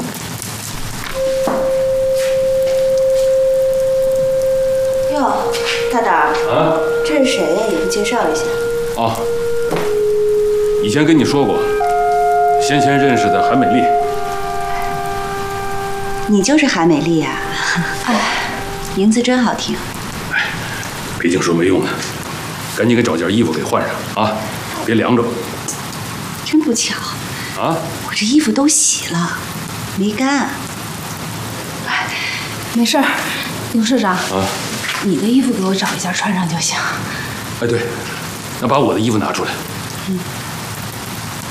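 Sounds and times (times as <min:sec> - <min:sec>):
heavy rain pouring down on a village: 0:00.0 - 0:41.5
sustained musical tones: 0:00.8 - 0:21.9
speech: 0:05.9 - 0:09.9, 0:10.8 - 0:11.8, 0:12.7 - 0:14.2, 0:16.3 - 0:18.3, 0:19.0 - 0:19.9, 0:21.2 - 0:22.1, 0:22.8 - 0:25.5, 0:26.7 - 0:30.6, 0:32.8 - 0:40.3.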